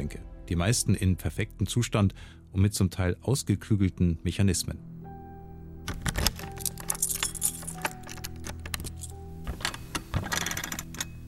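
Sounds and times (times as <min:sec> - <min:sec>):
speech: 0:00.0 - 0:04.9
armored safe combination lock clicking: 0:05.8 - 0:11.2
keys jingling at an armored safe: 0:05.9 - 0:11.2.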